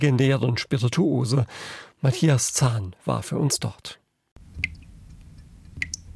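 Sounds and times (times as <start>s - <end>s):
speech: 0.0s - 4.0s
water dripping from an absinthe fountain into a glass: 4.6s - 6.1s.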